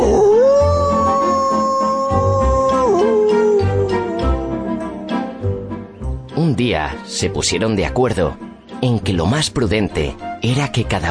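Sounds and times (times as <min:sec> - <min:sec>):
wolf howling: 0:00.0 - 0:05.9
soft rhythmic music with light tinkling accents: 0:00.0 - 0:11.0
speech: 0:06.8 - 0:11.0.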